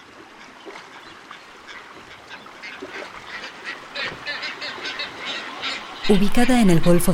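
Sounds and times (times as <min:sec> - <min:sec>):
brown and blue-footed booby colony giving harsh honks and whistles: 0:00.4 - 0:07.1
speech: 0:06.1 - 0:07.1.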